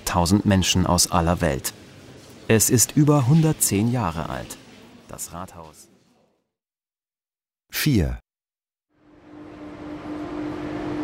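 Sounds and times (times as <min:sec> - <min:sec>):
speech: 0:00.1 - 0:01.8, 0:02.5 - 0:05.9, 0:07.7 - 0:08.2
steady humming tone: 0:09.0 - 0:11.0
train pulling away from a platform rumbling: 0:09.0 - 0:11.0.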